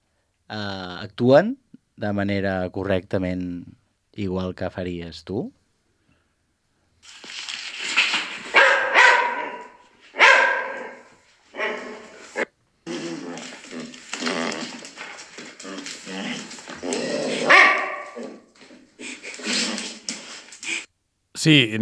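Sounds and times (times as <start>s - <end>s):
speech: 0.5s - 5.6s, 21.4s - 21.7s
dog barking, yipping and whimpering: 8.2s - 20.9s.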